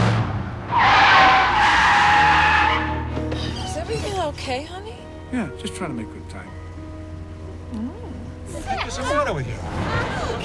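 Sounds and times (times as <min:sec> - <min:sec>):
car engines roaring as drag racing cars launch: 0:00.0 - 0:04.4, 0:07.1 - 0:10.4
tire squeal of cars drag racing from a traffic light on a city street: 0:00.7 - 0:04.3
speech: 0:05.3 - 0:06.9, 0:07.7 - 0:08.0, 0:09.0 - 0:10.4.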